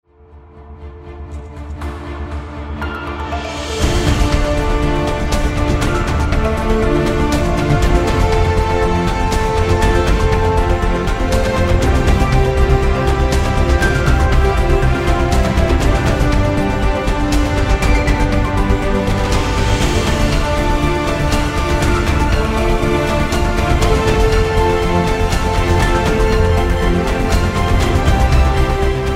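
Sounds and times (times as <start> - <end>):
documentary background music: 0.0 - 29.1.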